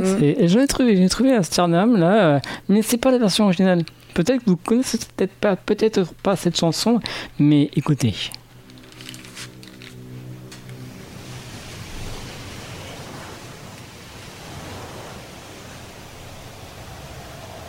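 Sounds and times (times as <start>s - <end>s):
speech: 0.0s - 8.4s
sea waves surf hiss at the opening of a chanson: 8.5s - 17.6s
soft sustained tone: 8.5s - 17.6s.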